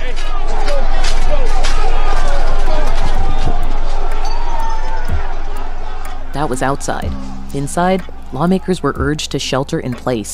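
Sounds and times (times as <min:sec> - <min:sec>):
running footsteps: 0:00.0 - 0:07.4
large agitated protest crowd shouting at the U.S. Capitol in Washington, D.C.: 0:00.0 - 0:08.9
speech: 0:06.4 - 0:10.3.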